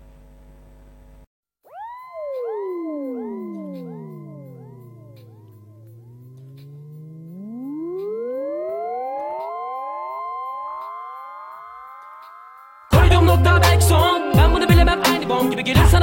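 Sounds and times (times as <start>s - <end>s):
layered synth tones sweeping upward in a rap track: 1.7s - 13.0s
bass-heavy rap beat: 3.5s - 9.6s, 12.9s - 16.0s
speech: 15.3s - 16.0s.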